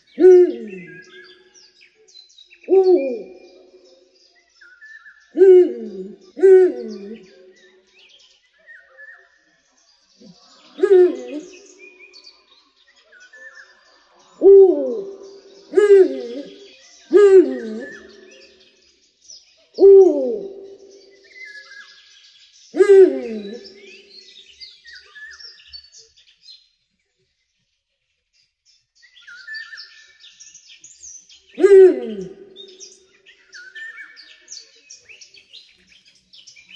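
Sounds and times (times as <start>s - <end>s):
faint chirps: 0.0s - 36.7s
owl hooting at night: 0.2s - 1.0s, 5.4s - 7.4s, 10.8s - 11.7s, 14.4s - 18.2s, 19.8s - 20.8s, 22.8s - 24.0s, 31.6s - 32.6s.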